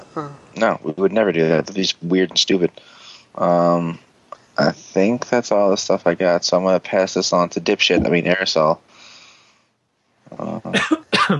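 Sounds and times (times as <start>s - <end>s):
speech: 0.2s - 8.9s, 10.3s - 11.3s
loud throaty coughs: 10.6s - 11.3s.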